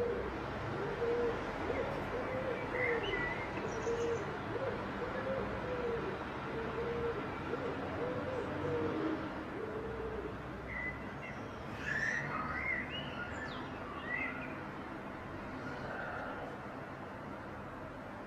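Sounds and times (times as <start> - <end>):
constant background noise: 0.0 - 18.2
perched common blackbird singing: 1.7 - 4.3, 10.7 - 14.6.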